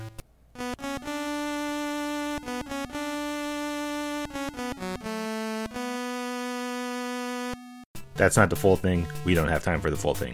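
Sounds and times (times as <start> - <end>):
buzzy Game Boy style chiptune two-voice arrangement in square-wave notes: 0.0 - 7.9
speech: 8.2 - 10.3.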